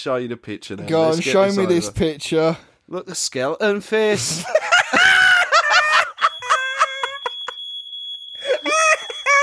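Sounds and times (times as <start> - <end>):
speech: 0.0 - 5.2
laughter: 4.2 - 7.6, 8.4 - 9.4
fire alarm with piercing high-pitched tone: 5.2 - 9.4.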